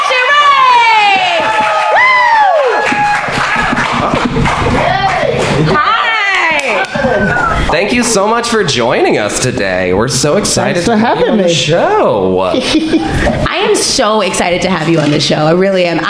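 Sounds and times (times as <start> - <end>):
audience cheering and whooping welcoming a comedian guest: 0.0 - 7.7
audience clapping welcoming a comedian guest onto a show: 0.1 - 8.4
laughter: 3.4 - 6.1, 10.8 - 14.0
speech: 7.8 - 16.0.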